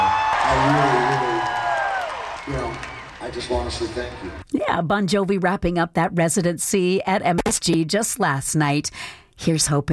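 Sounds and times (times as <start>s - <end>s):
concert crowd roaring and cheering: 0.0s - 4.4s
speech: 3.4s - 9.9s.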